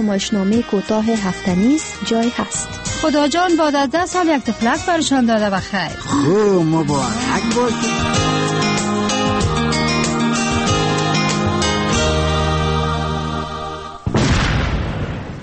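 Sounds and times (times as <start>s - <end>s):
speech: 0.0s - 9.0s
music: 0.0s - 14.1s
landmine explosion: 14.0s - 15.4s.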